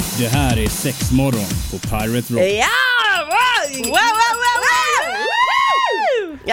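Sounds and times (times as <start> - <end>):
speech: 0.2 - 2.9, 3.8 - 4.5
loud high-pitched wavering scream in an intro jingle: 2.6 - 6.4.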